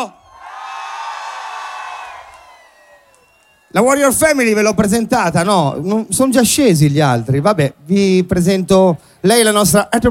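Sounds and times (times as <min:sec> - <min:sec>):
large crowd in a town square screaming and cheering at a summer-opening event: 0:00.0 - 0:04.6
speech: 0:03.7 - 0:10.1.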